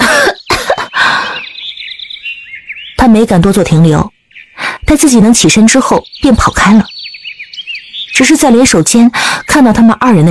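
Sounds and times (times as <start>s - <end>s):
woman coughing hard while clutching her throat: 0.0s - 0.9s
speech: 3.1s - 4.2s, 4.9s - 7.0s, 8.2s - 10.2s.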